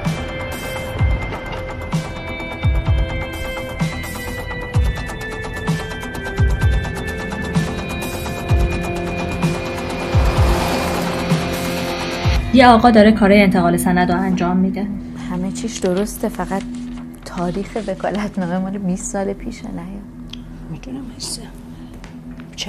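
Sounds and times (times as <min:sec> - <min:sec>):
faint tonal hum: 0:00.0 - 0:22.6
car on the move heard from inside: 0:07.2 - 0:12.5
speech: 0:12.6 - 0:15.0, 0:15.6 - 0:16.7, 0:17.4 - 0:21.7.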